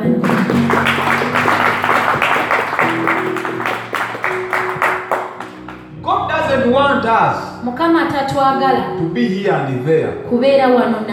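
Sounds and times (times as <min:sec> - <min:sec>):
crowd clapping hands in a rhythmic beat: 0:00.0 - 0:05.9
sustained keyboard or organ tones: 0:00.0 - 0:08.0
speech: 0:07.1 - 0:11.1.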